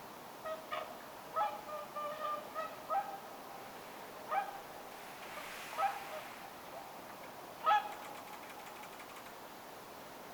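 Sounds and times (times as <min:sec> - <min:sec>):
whooper swan calls: 0:00.4 - 0:03.2, 0:04.3 - 0:06.9, 0:07.6 - 0:08.2.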